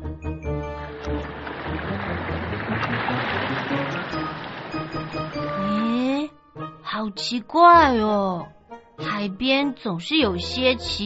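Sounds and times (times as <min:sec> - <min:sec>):
ocean waves breaking along the shore: 0:00.9 - 0:05.9
speech: 0:07.0 - 0:11.0.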